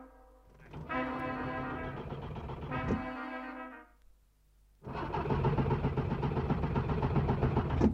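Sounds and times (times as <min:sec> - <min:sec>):
car engine cranked but failing to start: 0:00.5 - 0:03.0, 0:04.8 - 0:07.9.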